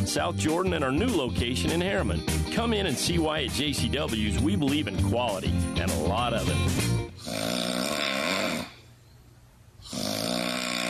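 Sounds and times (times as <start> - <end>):
speech: 0.1 - 7.8
loud rasping rattling snoring: 7.2 - 8.8, 9.8 - 10.8.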